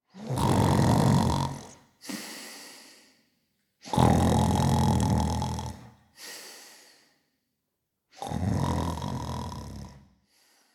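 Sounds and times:
sleeping humanoid creature snoring: 0.2 - 1.8, 3.8 - 6.0, 8.2 - 10.1.

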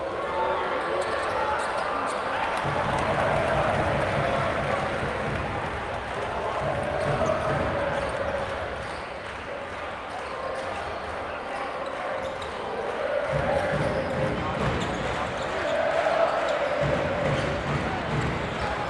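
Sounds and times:
crowd booing at an international basketball game: 0.2 - 8.9, 12.4 - 18.8
crowd chanting at an international basketball game: 2.1 - 8.9, 11.6 - 18.8
crowd clapping in unison at an international basketball game: 2.2 - 18.8
drum beat: 2.6 - 7.9, 16.8 - 18.8.

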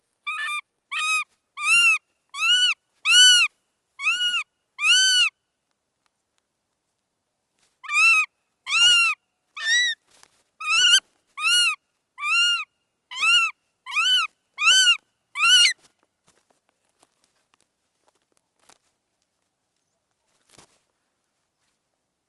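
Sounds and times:
northern goshawk calling with squawks, shrieks and screeches: 0.3 - 5.3, 7.8 - 10.0, 10.6 - 15.8.

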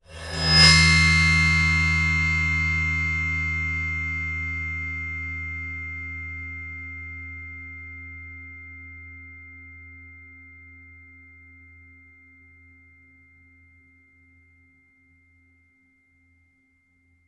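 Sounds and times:
bowed 13-inch hi-hat cymbal: 0.0 - 12.6.

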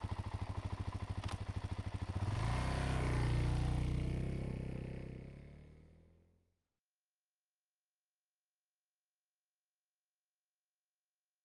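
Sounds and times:
Suzuki DRZ400 running slowly: 0.0 - 6.2.

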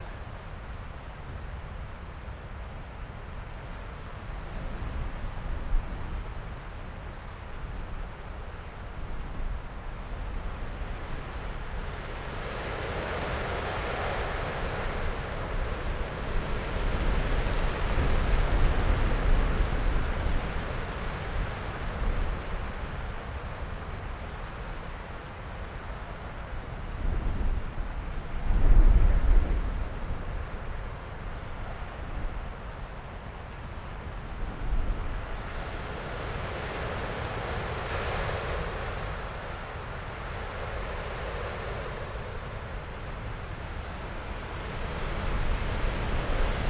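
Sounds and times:
strong gusty wind in snow: 0.0 - 46.6.

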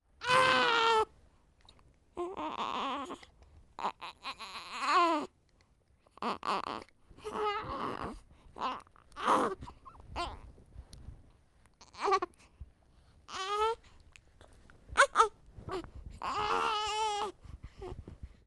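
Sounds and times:
unhappy newborn baby vocalizing: 0.2 - 1.1, 2.2 - 3.2, 3.8 - 5.3, 6.2 - 10.4, 11.8 - 12.3, 13.3 - 13.8, 15.0 - 17.4.

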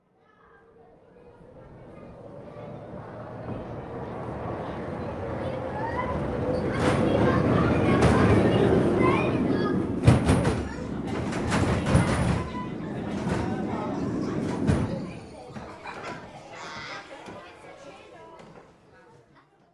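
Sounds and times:
fun ride passing by: 1.3 - 15.4.

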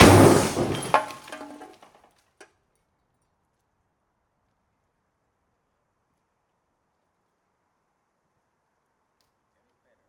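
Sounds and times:
Peugeot 106 dropped 10m onto metal plates: 0.0 - 1.9.

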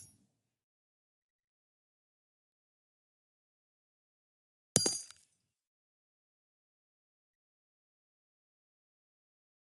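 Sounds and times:
50 BMG casing on dirt: 4.8 - 5.3.

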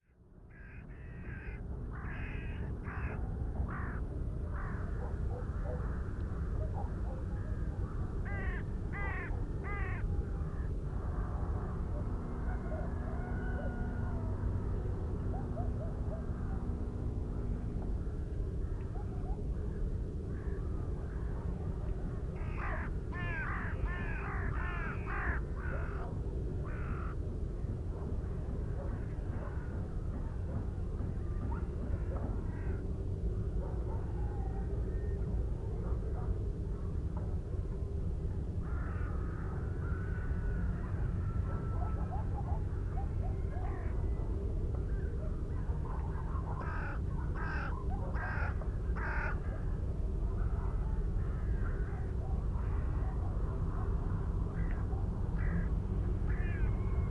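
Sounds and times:
distant city rumble: 0.2 - 57.0
distant village birds: 0.5 - 11.2, 12.0 - 26.0, 26.6 - 27.2, 38.6 - 49.7, 54.5 - 57.0.

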